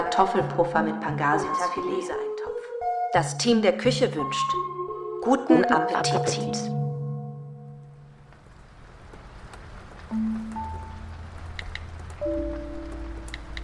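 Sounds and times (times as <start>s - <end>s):
speech: 0.1s - 2.3s, 3.1s - 6.8s
steady rain: 7.9s - 13.6s.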